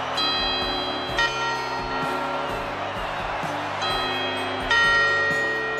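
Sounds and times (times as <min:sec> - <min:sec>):
resonant clock-tower bell chimes: 0:00.2 - 0:02.7, 0:03.7 - 0:05.7.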